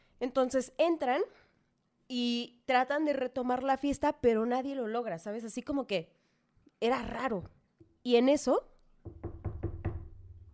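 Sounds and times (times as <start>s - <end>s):
speech: 0.2s - 1.4s, 2.1s - 6.2s, 6.8s - 9.4s
solid knocks on a door: 9.0s - 10.5s.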